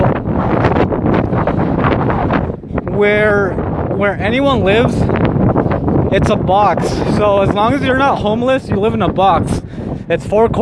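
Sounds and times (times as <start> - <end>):
strong wind buffeting the microphone on a cold windy day outdoors: 0.0 - 10.6
speech: 3.0 - 5.2, 6.1 - 10.6.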